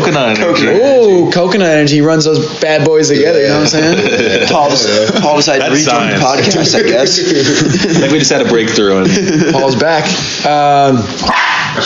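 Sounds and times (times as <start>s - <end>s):
speech: 0.1s - 11.8s
laughter: 3.4s - 10.2s
dog barking: 11.3s - 11.8s.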